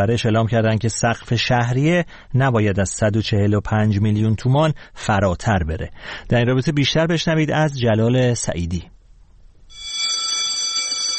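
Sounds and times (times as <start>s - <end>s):
speech: 0.0s - 8.9s
school bell ringing: 9.7s - 11.1s.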